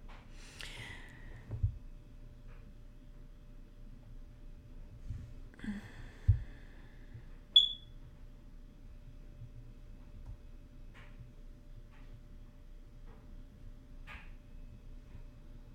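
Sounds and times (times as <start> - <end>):
faint hum: 0.0 - 15.7
short electronic beeps: 7.6 - 7.8.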